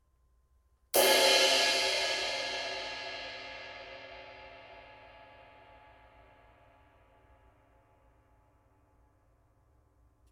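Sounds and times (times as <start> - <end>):
22in light ride cymbal: 1.0 - 8.3.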